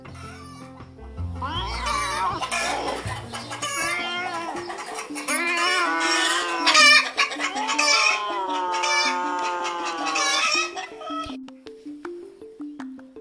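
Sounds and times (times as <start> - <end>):
chickens clucking and squawking fending off a cat: 1.4 - 11.4
rooster crowing: 1.6 - 11.3.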